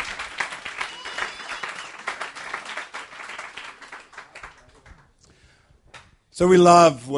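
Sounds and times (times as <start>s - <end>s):
audience applauding: 0.0s - 5.2s
speech: 6.4s - 7.1s.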